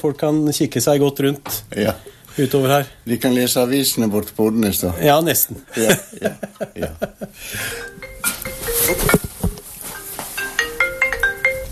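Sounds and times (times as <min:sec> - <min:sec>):
speech: 0:00.0 - 0:08.1
laughter: 0:05.7 - 0:07.5
mobile phone ringtone with bright repeating electronic melody: 0:07.6 - 0:11.7.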